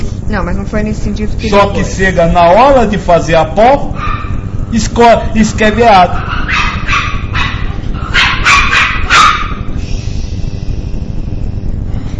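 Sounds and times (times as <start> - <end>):
low hum: 0.0 - 12.1
speech: 0.3 - 4.1, 4.7 - 6.4
dog barking: 3.9 - 4.5, 6.1 - 9.7.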